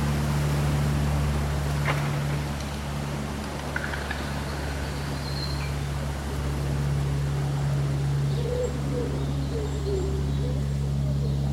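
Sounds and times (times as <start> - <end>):
leaves rustling on a cool summer day: 0.0 - 9.2
constant low hum: 0.0 - 11.5
local birds calling with thin high chirps: 1.8 - 11.5
soft low cooing: 6.3 - 11.5.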